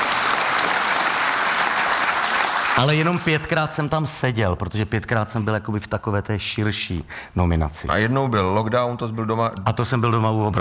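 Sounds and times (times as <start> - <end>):
audience applause for a nominated actor: 0.0 - 3.6
speech: 2.8 - 10.6.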